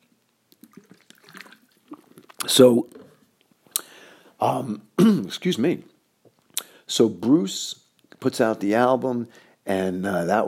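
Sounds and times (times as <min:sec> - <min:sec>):
person sipping water with soft wet clicks and slurping gulps: 0:00.5 - 0:04.0
speech: 0:02.5 - 0:03.0, 0:04.4 - 0:05.9, 0:06.9 - 0:10.4.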